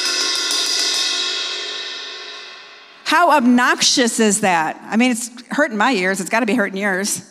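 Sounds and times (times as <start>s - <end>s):
gong or cymbal struck, bright metallic clang: 0.0s - 3.0s
speech: 3.1s - 7.2s.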